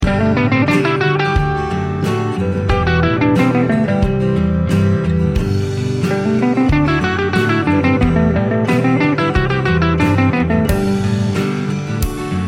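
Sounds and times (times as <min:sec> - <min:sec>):
music example in G major: 0:00.0 - 0:12.4.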